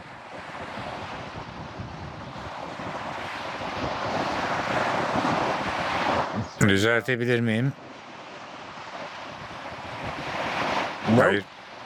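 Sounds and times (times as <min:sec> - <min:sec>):
strong wind buffeting the microphone: 0:00.0 - 0:06.7, 0:07.8 - 0:11.8
crashing waves: 0:00.0 - 0:11.8
speech: 0:06.6 - 0:07.8, 0:11.2 - 0:11.6.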